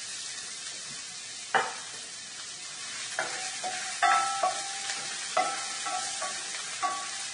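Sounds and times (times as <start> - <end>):
white onion sizzling in pure olive oil in a preheated pan: 0.0 - 7.3
sharp clacks of onion being stirred in a pan: 3.2 - 7.3.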